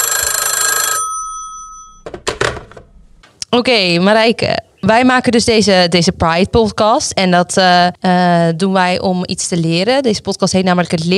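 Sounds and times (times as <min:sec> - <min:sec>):
telephone bell ringing for an outgoing call: 0:00.0 - 0:02.1
speech: 0:03.5 - 0:11.1.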